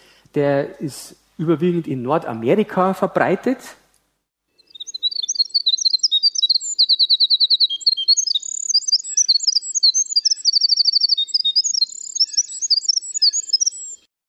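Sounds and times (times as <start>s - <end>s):
speech: 0.3s - 3.8s
winter wren singing: 4.6s - 14.1s.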